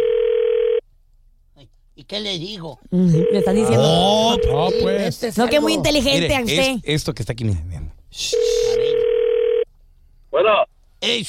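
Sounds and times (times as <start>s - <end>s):
telephone dial tone as a call is placed: 0.0s - 0.8s, 8.4s - 9.7s
speech: 2.0s - 8.5s, 10.4s - 11.2s.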